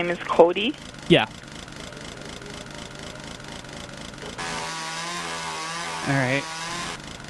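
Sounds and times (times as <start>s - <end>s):
speech: 0.0s - 1.5s, 6.1s - 6.6s
engine-driven tool trimming sticks off tree branches: 0.0s - 7.2s.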